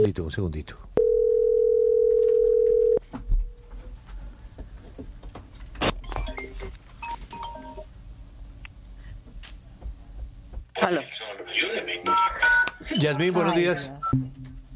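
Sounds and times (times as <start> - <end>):
speech: 0.0 - 1.0, 13.0 - 14.2
noisy telephone line: 1.0 - 3.0, 10.8 - 14.1
telephone dial tone after caller hung up: 1.0 - 3.0.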